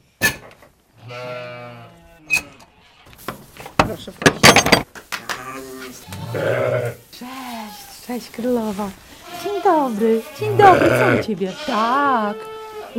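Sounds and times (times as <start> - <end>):
sheep bleating: 1.0 - 3.0, 5.3 - 8.2, 9.1 - 12.9
clattering and knocking: 3.6 - 5.0
speech: 4.0 - 4.4, 8.1 - 12.9.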